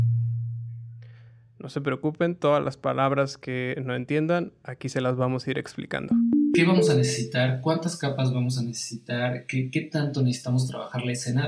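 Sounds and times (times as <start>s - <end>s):
speech: 1.6s - 11.4s
steady low-pitched humming tone: 6.1s - 7.6s
faint higher noise: 6.1s - 7.8s.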